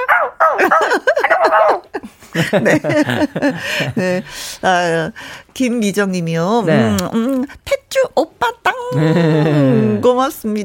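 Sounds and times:
person mimicking a puppy with high yappy barks and whimpers: 0.0 - 1.9
laughter: 0.6 - 4.3, 8.9 - 10.0
speech: 2.4 - 10.6.

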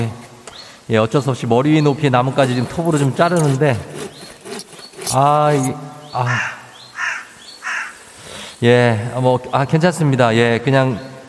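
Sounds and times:
speech: 0.9 - 4.0, 5.1 - 6.6, 8.6 - 11.1
crow cawing: 6.0 - 8.5.

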